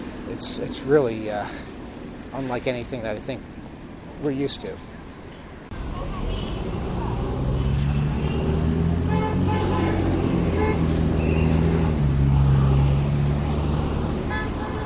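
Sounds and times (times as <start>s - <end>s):
dense traffic rumbling at a busy intersection: 0.0s - 14.8s
speech: 0.4s - 3.6s, 4.2s - 4.9s
car horns honking in short bursts: 9.0s - 12.0s, 14.0s - 14.8s.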